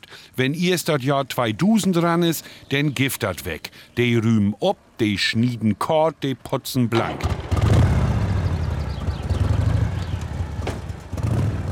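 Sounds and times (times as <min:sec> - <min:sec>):
speech: 0:00.4 - 0:07.4
motorized lawn mower engine droning: 0:07.0 - 0:11.7.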